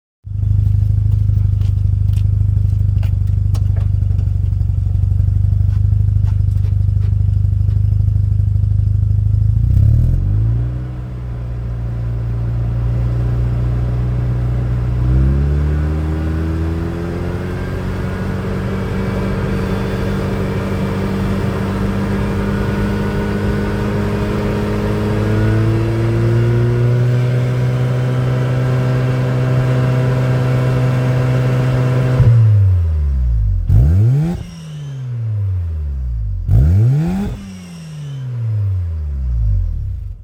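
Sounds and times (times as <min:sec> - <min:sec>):
second-generation RX-7 car exhaust: 0:00.3 - 0:40.2.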